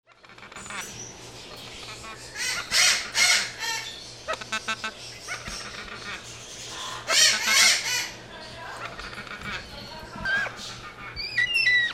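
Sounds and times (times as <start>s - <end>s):
bird harsh squawks: 1.8s - 8.2s, 8.8s - 11.9s.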